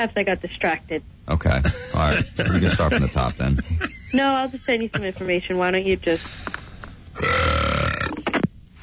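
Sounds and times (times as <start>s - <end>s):
speech: 0.0s - 6.6s, 7.2s - 7.6s
laughter: 1.6s - 5.4s
long loud belch: 7.2s - 8.2s
short guttural croaks: 7.2s - 8.5s.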